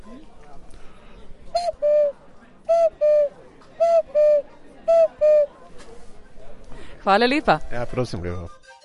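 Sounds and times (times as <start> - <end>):
faint murmur: 0.0 - 8.6
clay whistle from a pottery workshop blown imitating a cuckoo call: 1.6 - 2.1, 2.7 - 5.5
speech: 7.1 - 8.6.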